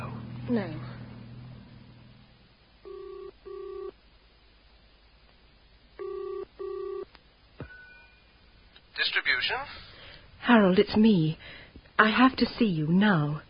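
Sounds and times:
low hum: 0.0 - 13.4
speech: 0.5 - 1.0, 9.0 - 13.4
short electronic telephone ringing tones in a phone box: 2.8 - 3.9, 6.0 - 7.0.

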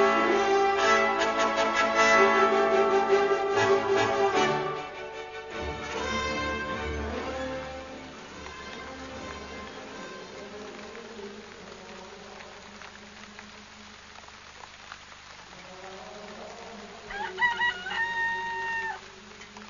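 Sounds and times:
rain-like hiss: 0.0 - 19.6
cockerel crowing at dawn: 16.5 - 19.4.

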